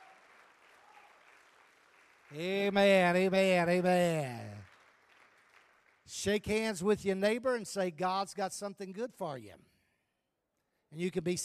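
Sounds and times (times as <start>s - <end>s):
congregation clapping hands in praise at a church service: 0.0s - 7.4s
speech: 2.3s - 4.4s, 6.1s - 9.7s, 10.9s - 11.4s.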